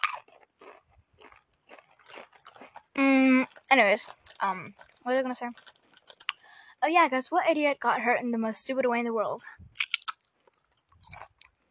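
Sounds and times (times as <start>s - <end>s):
crisp crunching from someone chewing food: 0.0s - 6.4s, 9.8s - 11.6s
speech: 3.0s - 5.8s, 6.8s - 9.7s.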